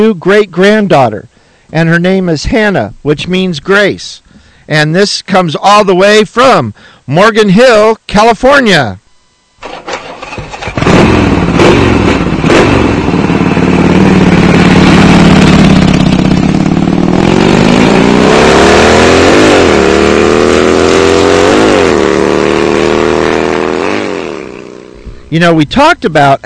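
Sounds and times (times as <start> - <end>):
speech: 0.0 - 9.0, 25.3 - 26.4
motorcycle engine starting, idling and revving: 9.6 - 25.3.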